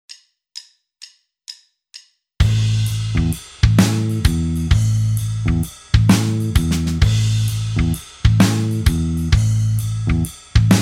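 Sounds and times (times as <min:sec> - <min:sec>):
backing music: 0:02.4 - 0:10.8.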